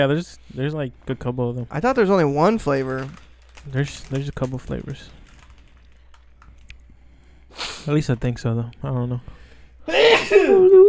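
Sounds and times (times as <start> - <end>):
speech: 0.0 - 5.2, 7.8 - 10.8
loud sneeze: 9.9 - 10.6.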